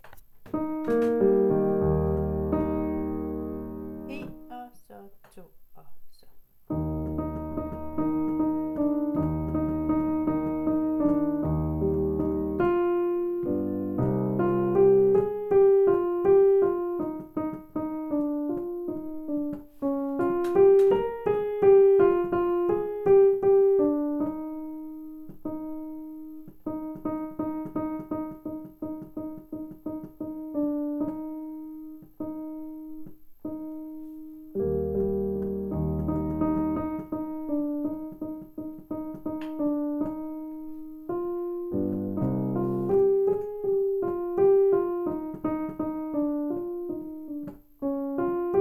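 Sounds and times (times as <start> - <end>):
instrumental music without vocals: 0.0 - 5.1, 6.6 - 48.6.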